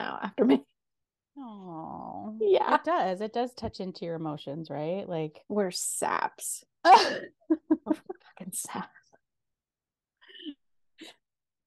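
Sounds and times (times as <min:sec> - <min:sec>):
speech: 0:00.0 - 0:00.7, 0:01.4 - 0:09.0
person coughing: 0:06.9 - 0:07.5.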